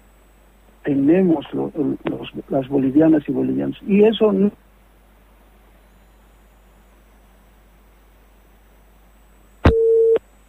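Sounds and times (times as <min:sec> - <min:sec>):
speech: 0:00.9 - 0:04.6
phone busy tone after a dropped phone call: 0:09.6 - 0:10.2.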